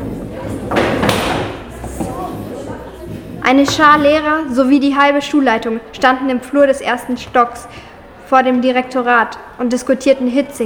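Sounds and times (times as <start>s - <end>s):
chairs being shifted around a room, scraping and wooden knocks: 0.0s - 2.4s, 3.1s - 4.3s
low murmur of voices: 0.0s - 10.6s
speech: 3.5s - 10.6s.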